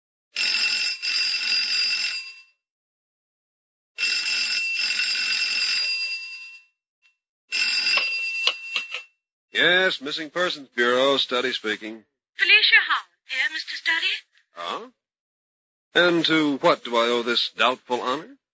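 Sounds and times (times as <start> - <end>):
telephone ringing with a bell-like trill: 0.4 - 2.6, 4.0 - 6.8, 7.5 - 9.1
speech: 9.6 - 15.0, 15.9 - 18.4.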